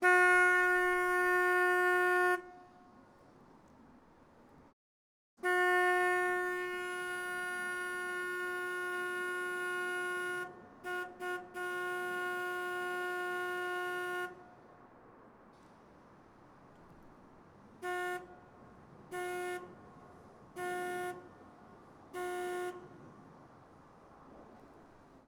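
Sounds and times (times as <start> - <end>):
narrowboat horn: 0.0 - 2.8, 5.4 - 14.6, 17.8 - 18.5, 19.1 - 19.8, 20.5 - 21.4, 22.1 - 23.0.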